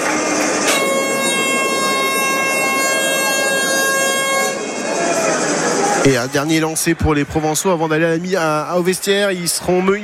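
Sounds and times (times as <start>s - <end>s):
rugby stadium half-time siren blaring: 0.0s - 6.2s
noisy rugby stadium crowd: 0.0s - 10.0s
speech: 6.0s - 10.0s.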